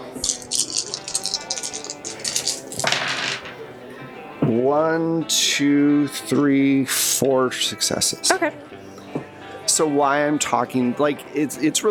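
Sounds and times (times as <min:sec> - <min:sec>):
handful of dice rattling and clattering: 0:00.0 - 0:03.7
speech: 0:04.5 - 0:08.9, 0:09.8 - 0:11.8.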